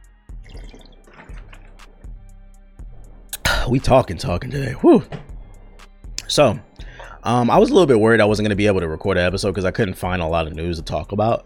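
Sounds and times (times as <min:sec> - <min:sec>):
person swigging water with wet gulps and swallows: 0:00.3 - 0:02.2
soft sloshing of water: 0:00.3 - 0:08.6
speech: 0:03.7 - 0:05.3, 0:06.3 - 0:11.4.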